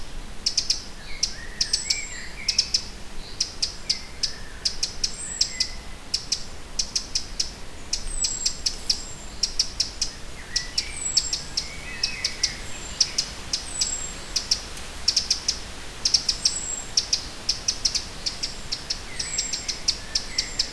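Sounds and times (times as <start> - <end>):
Eurasian wren Troglodytes troglodytes singing: 0.4 - 20.7.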